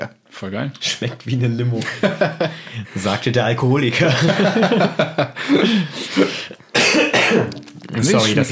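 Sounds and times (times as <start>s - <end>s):
speech: 0.4s - 6.6s, 7.3s - 8.5s
laughter: 1.8s - 3.0s, 4.0s - 6.6s
harsh breathy coughs: 5.5s - 7.7s.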